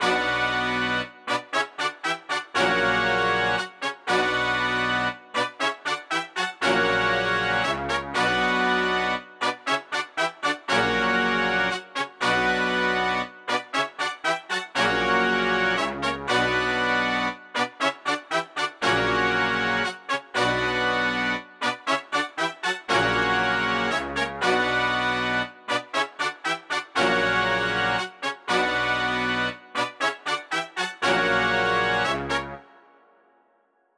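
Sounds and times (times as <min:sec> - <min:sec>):
118 BPM B minor trap horn melody loop: 0:00.0 - 0:32.8.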